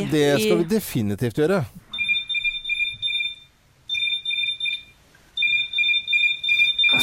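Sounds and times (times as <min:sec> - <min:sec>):
speech: 0:00.0 - 0:01.8
alarm clock app ringing with bright electronic beeps: 0:01.9 - 0:07.0.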